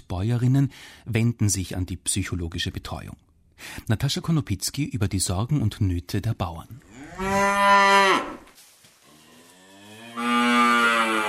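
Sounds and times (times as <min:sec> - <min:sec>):
speech: 0:00.1 - 0:08.3
cow mooing in a barn of an organic farm in Lower Austria: 0:06.9 - 0:08.4, 0:09.1 - 0:11.2.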